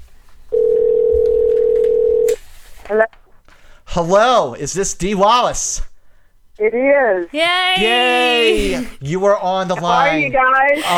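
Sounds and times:
buzzing phone ringback tone on an outgoing call: 0.5 - 2.4
speech: 2.9 - 3.2, 3.9 - 5.9, 6.6 - 10.9.

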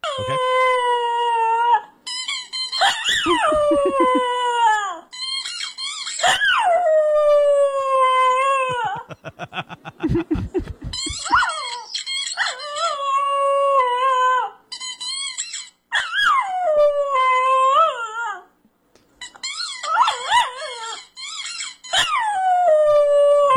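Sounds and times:
squeaky toy squeaking while chewed by dog: 0.0 - 1.0, 2.0 - 6.6, 10.8 - 13.1, 14.7 - 16.4, 19.2 - 22.2
dog howling and whining: 0.0 - 1.9, 2.5 - 9.1, 11.0 - 18.5, 19.5 - 23.5
laughter: 3.2 - 4.4, 8.6 - 11.4.

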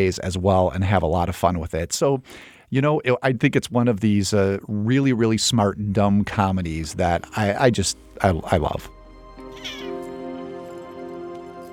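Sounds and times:
speech: 0.0 - 9.0
cat meowing: 9.4 - 10.1.

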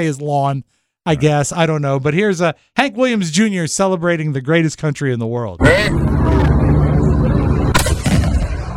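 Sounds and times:
speech: 0.0 - 6.5
low rumbling background: 5.6 - 8.7
Civil War cannon firing: 7.7 - 8.7.

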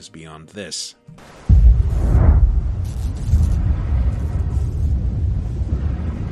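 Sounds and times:
big booming video game explosion marking time up: 1.4 - 6.3
long dense low rumble: 1.5 - 6.3.

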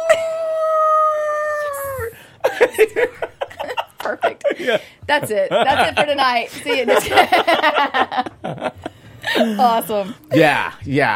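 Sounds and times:
person imitating a wolf howl: 0.0 - 2.0
laughter: 2.4 - 9.9
speech: 2.7 - 3.3, 4.1 - 8.8, 9.4 - 11.1.

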